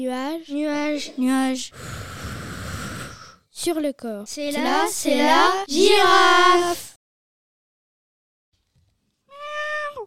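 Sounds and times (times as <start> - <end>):
speech: 0.0 - 2.3, 3.6 - 6.9
drawn-out cat meow: 9.3 - 10.0.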